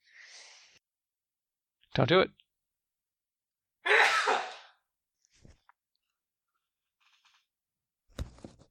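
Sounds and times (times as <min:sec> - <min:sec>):
speech: 0:02.0 - 0:02.4
person sneezing: 0:03.9 - 0:04.8.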